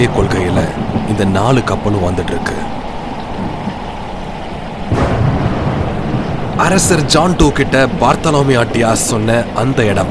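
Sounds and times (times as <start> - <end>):
speech: 0.0 - 2.8, 6.6 - 10.0
heavy rain: 0.0 - 10.0
loud thunderclap rumbling over the downpour: 4.8 - 10.0.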